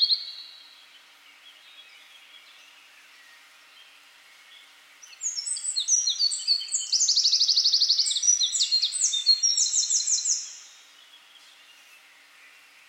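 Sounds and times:
Eurasian wren Troglodytes troglodytes singing: 0:05.0 - 0:11.2.

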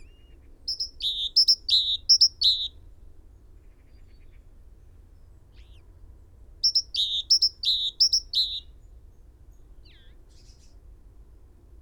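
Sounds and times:
great tit calling: 0:00.7 - 0:02.7, 0:06.6 - 0:08.6.

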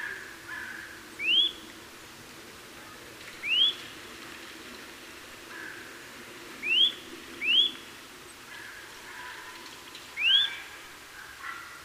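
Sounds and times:
quiet steady background hiss: 0:00.0 - 0:11.8
Eurasian nuthatch Sitta europaea giving upslurred whistles: 0:01.2 - 0:01.6, 0:03.4 - 0:03.8, 0:06.6 - 0:07.8.

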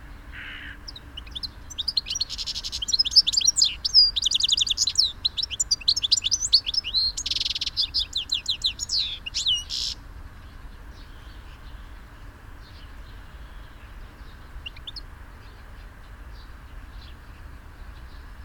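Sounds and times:
European goldfinch twittering: 0:00.3 - 0:10.0, 0:12.6 - 0:17.2.

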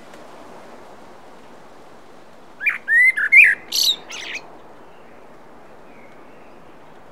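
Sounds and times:
common blackbird Turdus merula singing: 0:02.6 - 0:04.4.

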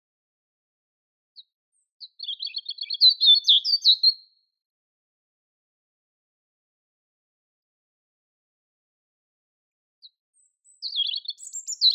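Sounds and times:
European robin Erithacus rubecula song phrase: 0:01.4 - 0:04.4, 0:10.0 - 0:11.9.

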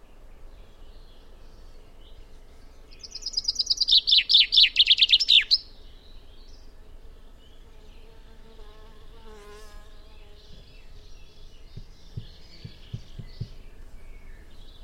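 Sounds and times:
common chaffinch Fringilla coelebs song: 0:00.0 - 0:14.8
faint bird: 0:00.0 - 0:14.8
soft low knocks: 0:10.4 - 0:14.2.

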